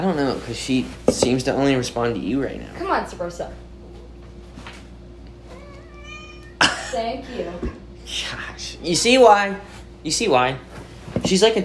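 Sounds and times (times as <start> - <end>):
speech: 0.0 - 3.7, 6.9 - 11.6
steady low hum: 0.0 - 11.6
cat meowing complainingly while removed from coffee table: 5.5 - 6.6.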